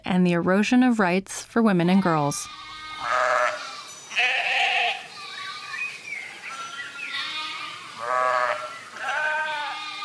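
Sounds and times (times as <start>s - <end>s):
speech: 0.1s - 3.2s
sheep bleating in a flock herded with cows in Kajiado County Kenya: 2.5s - 5.6s, 7.0s - 10.0s.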